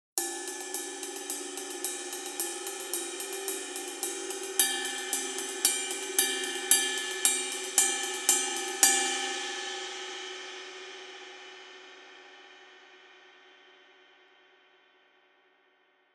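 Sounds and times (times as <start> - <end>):
22-inch ride cymbal: 0.2 - 12.2.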